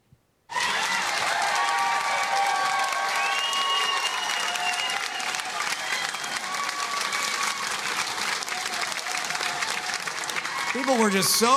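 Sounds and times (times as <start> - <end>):
large crowd applauding and cheering: 0.5 - 11.5
whistles: 3.0 - 6.5
speech: 10.8 - 11.5.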